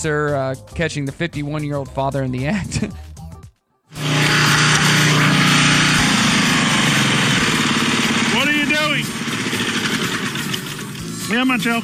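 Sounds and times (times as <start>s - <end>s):
speech: 0.0s - 3.1s, 11.3s - 11.8s
ride-on lawnmower engine running in Australia: 4.0s - 11.8s.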